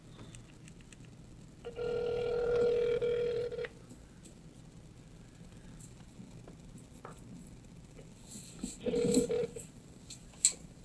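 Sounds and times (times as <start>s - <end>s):
phone call ringback tone over a speaker: 1.7s - 3.7s, 8.8s - 9.6s.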